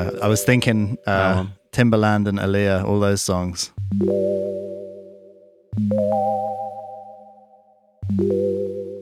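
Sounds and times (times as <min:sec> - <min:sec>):
speech: 0:00.0 - 0:04.7, 0:05.8 - 0:06.6, 0:08.1 - 0:08.8
sustained seventh chords on a basic sine wave synth: 0:03.8 - 0:08.9.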